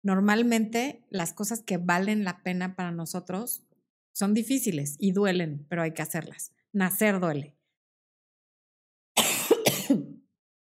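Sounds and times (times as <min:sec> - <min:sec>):
speech: 0:00.0 - 0:07.6
harsh coughing: 0:09.2 - 0:10.2.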